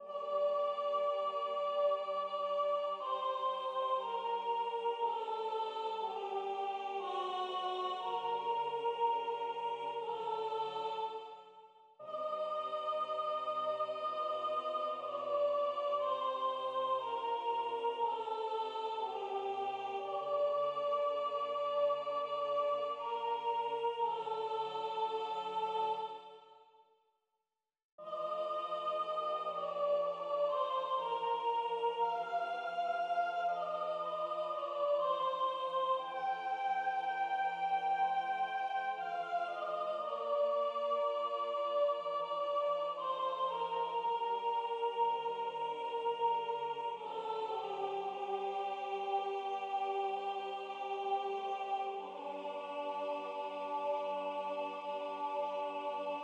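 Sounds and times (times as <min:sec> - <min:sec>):
soprano singing: 0:00.0 - 0:11.4, 0:12.0 - 0:26.4, 0:28.0 - 0:56.2.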